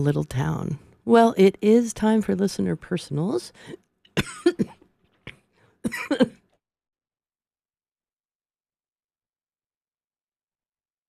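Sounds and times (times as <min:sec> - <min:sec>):
speech: 0:00.0 - 0:04.7, 0:05.8 - 0:06.4
person coughing harshly: 0:04.2 - 0:04.8, 0:05.8 - 0:06.4.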